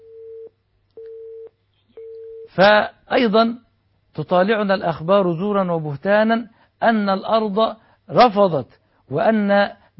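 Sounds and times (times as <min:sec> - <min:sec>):
telephone line tone as a caller is connected: 0:00.0 - 0:02.5
speech: 0:02.5 - 0:03.6, 0:04.2 - 0:09.9.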